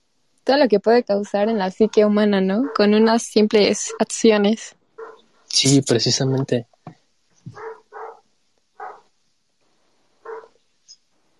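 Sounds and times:
speech: 0:00.5 - 0:04.8, 0:05.5 - 0:06.7
dog giving short barks or yelps: 0:01.8 - 0:03.1, 0:05.0 - 0:05.3, 0:07.5 - 0:08.2, 0:08.8 - 0:09.1, 0:10.2 - 0:10.6.

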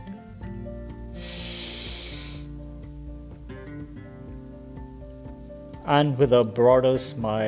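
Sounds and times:
soft music: 0:00.0 - 0:07.4
deep breath in during a guided yoga breathing exercise: 0:01.0 - 0:02.6
speech: 0:05.9 - 0:07.4.

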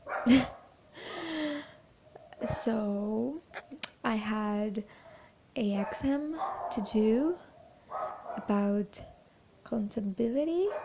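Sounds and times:
dog barking: 0:00.0 - 0:00.7, 0:02.1 - 0:02.7, 0:05.8 - 0:09.2, 0:10.7 - 0:10.8
speech: 0:00.2 - 0:00.6, 0:02.4 - 0:05.0, 0:05.6 - 0:09.1, 0:09.7 - 0:10.8.

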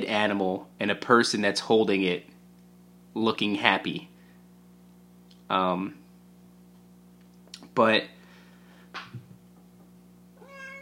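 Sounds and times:
speech: 0:00.0 - 0:02.3, 0:03.2 - 0:04.1, 0:05.5 - 0:06.0, 0:07.8 - 0:08.2
low steady hum: 0:00.0 - 0:10.7
cat meowing: 0:10.4 - 0:10.7.

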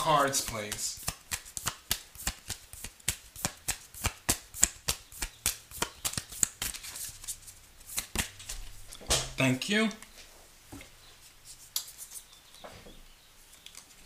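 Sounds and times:
speech: 0:00.0 - 0:01.1, 0:09.4 - 0:10.0
tarot cards being shuffled: 0:00.3 - 0:08.9.

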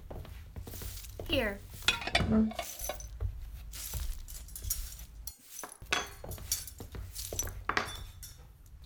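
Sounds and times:
dishes and cutlery clinking as a table is set: 0:00.7 - 0:03.1, 0:03.7 - 0:08.4
speech: 0:01.3 - 0:01.7, 0:02.3 - 0:02.8.

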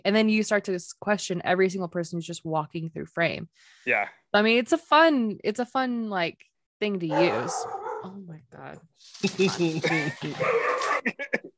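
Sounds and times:
speech: 0:00.0 - 0:11.5
dog barking and yelping: 0:07.1 - 0:08.2, 0:10.4 - 0:11.1
laughter: 0:09.2 - 0:11.5.

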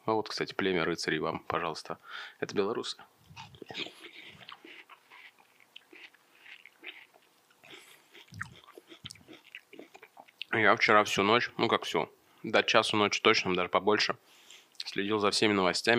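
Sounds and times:
speech: 0:00.1 - 0:04.0, 0:10.5 - 0:14.3, 0:14.9 - 0:15.9
breathing: 0:02.0 - 0:02.4, 0:07.7 - 0:08.2, 0:12.2 - 0:12.5, 0:14.2 - 0:14.8
person eating watermelon with wet crunching: 0:03.2 - 0:10.6.

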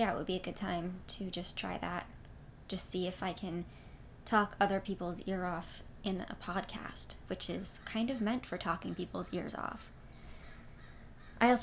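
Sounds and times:
speech: 0:00.0 - 0:10.0, 0:11.4 - 0:11.6
birds with harsh caw-like cries outdoors: 0:10.1 - 0:11.4.

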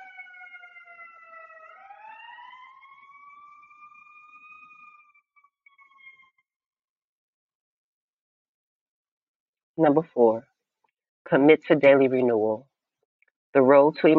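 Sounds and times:
passing emergency vehicle siren: 0:00.0 - 0:06.4
speech: 0:09.8 - 0:10.5, 0:11.3 - 0:12.7, 0:13.5 - 0:14.1.

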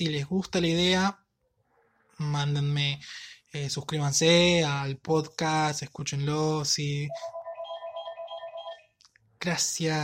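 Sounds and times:
speech: 0:00.0 - 0:01.2, 0:02.2 - 0:07.4, 0:09.4 - 0:10.0
telephone ringing with electronic warbling tone: 0:07.1 - 0:08.9.

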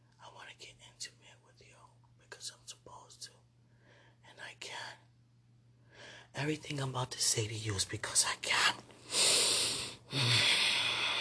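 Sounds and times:
speech: 0:06.4 - 0:08.9, 0:10.1 - 0:10.5
heavy breathing: 0:09.0 - 0:11.1.

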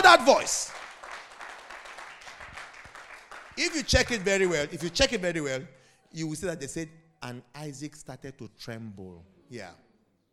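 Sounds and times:
speech: 0:00.0 - 0:00.8, 0:03.6 - 0:09.8
crowd clapping: 0:00.0 - 0:05.5.

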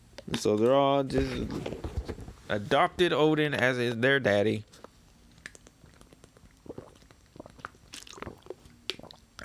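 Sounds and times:
speech: 0:00.3 - 0:01.9, 0:02.5 - 0:04.8
person sipping and swallowing water with wet mouth clicks: 0:05.4 - 0:09.4.

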